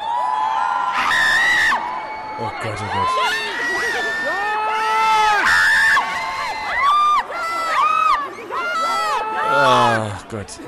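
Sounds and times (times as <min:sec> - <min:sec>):
excited fans screaming at red carpet arrival: 0:00.0 - 0:10.2
speech: 0:02.4 - 0:04.6, 0:09.6 - 0:10.6.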